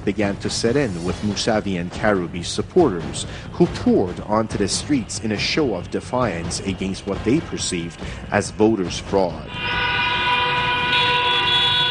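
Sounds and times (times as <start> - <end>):
speech: 0.0 - 10.0
car horns honking in a Tehran street protest: 9.4 - 11.8.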